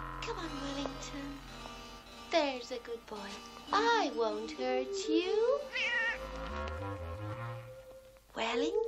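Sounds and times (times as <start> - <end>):
speech: 0.2 - 1.6, 2.3 - 6.6, 8.4 - 8.8
cat meowing: 5.7 - 6.4.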